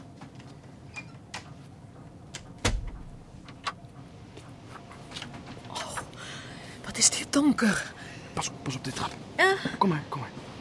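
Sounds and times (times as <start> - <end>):
door shutting with a solid thump: 2.6 - 3.2
speech: 7.0 - 10.4.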